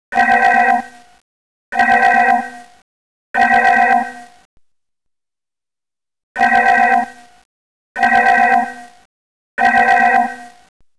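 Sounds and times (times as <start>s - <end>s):
red alert alarm: 0.1s - 1.1s, 1.7s - 2.8s, 3.4s - 4.5s, 6.4s - 7.4s, 8.0s - 10.7s.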